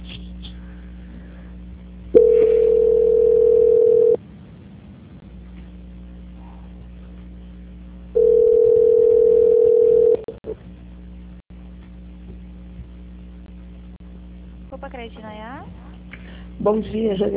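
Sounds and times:
faint telephone line hum: 0:00.0 - 0:17.3
long electronic telephone beeps during call transfer: 0:02.2 - 0:04.2, 0:08.2 - 0:10.2
speech: 0:16.6 - 0:17.3.

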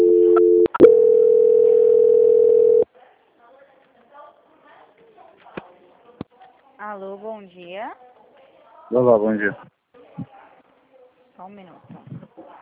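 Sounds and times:
telephone line tone during call transfer: 0:00.0 - 0:02.8
speech: 0:07.0 - 0:08.1, 0:08.9 - 0:10.3, 0:11.4 - 0:12.2.

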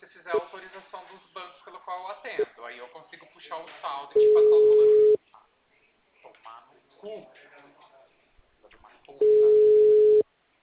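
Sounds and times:
telephone busy tone after the call hangs up: 0:04.2 - 0:05.2, 0:09.2 - 0:10.2.

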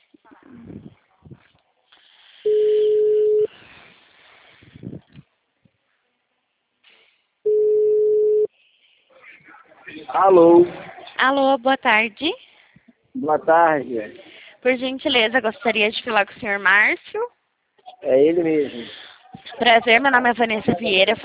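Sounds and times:
telephone ringing tone while placing a call: 0:02.5 - 0:03.5, 0:07.5 - 0:08.5
speech: 0:10.1 - 0:12.5, 0:13.2 - 0:17.3, 0:18.0 - 0:19.0, 0:19.6 - 0:21.2.

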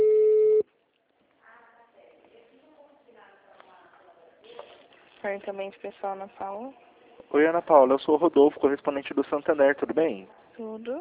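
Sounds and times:
telephone line tone beep on a call to a hospital: 0:00.0 - 0:00.6
speech: 0:05.2 - 0:11.0.

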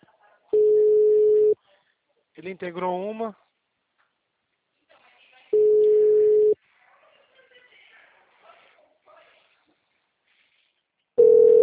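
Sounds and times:
telephone ringing tone while a call is placed: 0:00.6 - 0:01.6, 0:05.6 - 0:06.6, 0:11.2 - 0:11.6
speech: 0:02.4 - 0:03.4.

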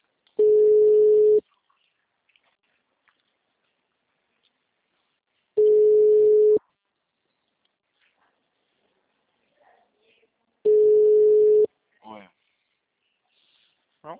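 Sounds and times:
telephone ringback tone: 0:00.4 - 0:01.4, 0:05.6 - 0:06.6, 0:10.7 - 0:11.7.

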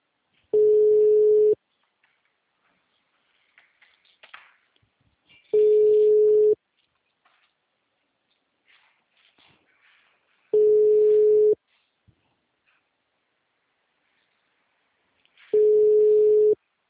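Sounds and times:
faint noise: 0:00.0 - 0:16.8
telephone call tones on a busy line: 0:00.6 - 0:01.6, 0:05.6 - 0:06.6, 0:10.6 - 0:11.6, 0:15.6 - 0:16.6.

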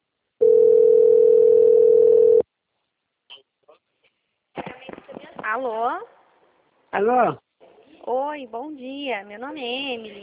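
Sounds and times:
telephone ringing tone while a call goes through: 0:00.4 - 0:02.4
speech: 0:05.5 - 0:06.2, 0:06.9 - 0:07.4, 0:08.1 - 0:10.2.

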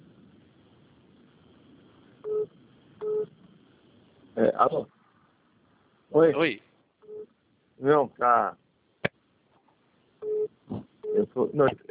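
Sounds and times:
call-waiting tone on a phone during a call: 0:02.2 - 0:03.3, 0:10.2 - 0:11.3
speech: 0:04.6 - 0:05.0, 0:06.1 - 0:06.7, 0:07.8 - 0:08.6, 0:11.2 - 0:11.8.

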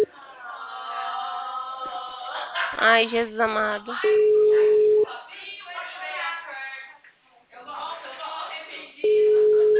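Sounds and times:
speech: 0:02.8 - 0:04.3
telephone busy signal: 0:04.1 - 0:05.0, 0:09.1 - 0:09.7.

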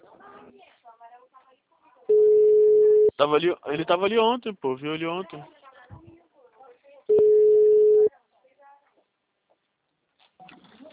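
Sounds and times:
telephone busy tone beep after a dropped call: 0:02.1 - 0:03.1, 0:07.1 - 0:08.1
speech: 0:03.2 - 0:06.0.

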